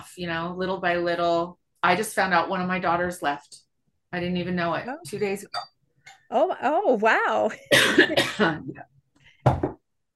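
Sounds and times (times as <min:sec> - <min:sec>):
speech: 0:00.2 - 0:05.7, 0:06.3 - 0:09.8
person clearing throat: 0:07.7 - 0:08.7
person coughing: 0:07.7 - 0:08.8.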